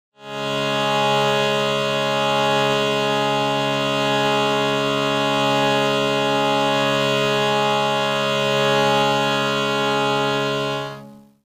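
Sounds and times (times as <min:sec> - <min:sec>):
shruti box drone: 0:00.2 - 0:11.4.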